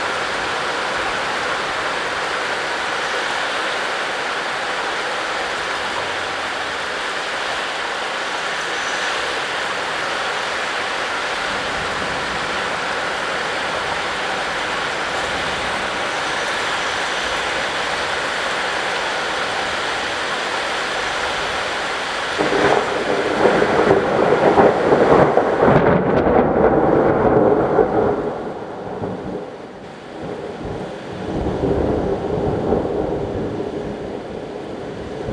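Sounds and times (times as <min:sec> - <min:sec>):
rain: 0:00.0 - 0:35.3
thunder: 0:22.3 - 0:35.3.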